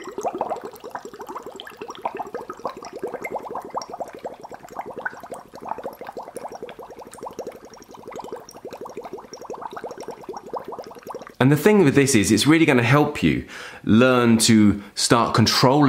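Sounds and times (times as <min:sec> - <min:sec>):
gentle bubbles blown into water: 0:00.0 - 0:11.4
speech: 0:11.4 - 0:15.8.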